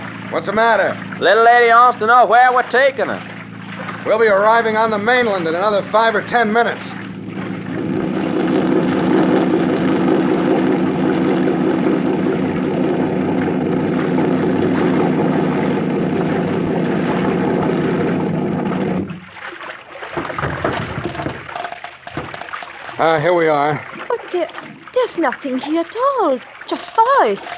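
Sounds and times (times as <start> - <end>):
motorboat engine droning: 0.0 - 27.5
speech: 0.3 - 7.1, 23.0 - 27.5.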